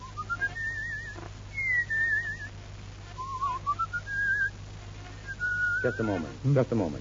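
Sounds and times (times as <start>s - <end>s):
low steady hum: 0.0s - 7.0s
person whistling a slow wavering tune: 0.1s - 2.5s, 3.2s - 4.5s, 5.3s - 6.2s
speech: 5.8s - 7.0s.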